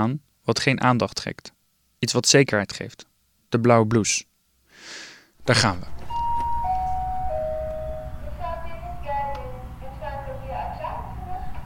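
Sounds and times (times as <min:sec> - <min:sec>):
speech: 0:00.0 - 0:06.0
doorbell ringing with descending chime tones: 0:06.0 - 0:08.6.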